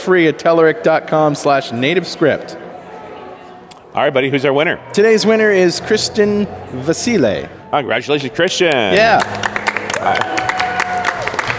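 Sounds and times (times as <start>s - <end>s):
speech: 0.0s - 2.6s, 3.9s - 10.4s
golf clap applause: 8.7s - 11.5s.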